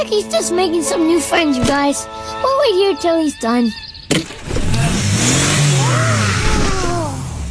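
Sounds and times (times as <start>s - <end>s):
speech: 0.0s - 4.6s
car engine revving in surging throttle bursts: 4.1s - 7.5s.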